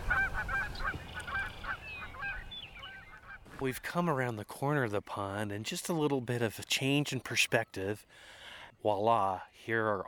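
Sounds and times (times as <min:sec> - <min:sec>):
Canada geese honking at a pond: 0:00.0 - 0:03.7
speech: 0:03.6 - 0:10.0.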